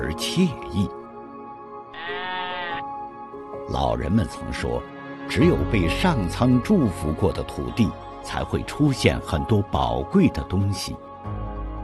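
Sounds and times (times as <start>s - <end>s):
speech: 0.1s - 1.0s, 3.7s - 11.1s
white cashmere goat bleating on grassland near Bangong Lake in Ngari Tibet: 1.9s - 2.8s.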